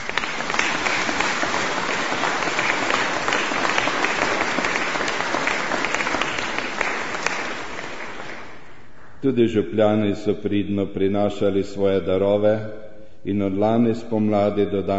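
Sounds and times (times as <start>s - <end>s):
audience applause at a church renovation donations gathering in Podčetrtek Slovenia: 0.0s - 9.2s
speech: 9.2s - 14.9s.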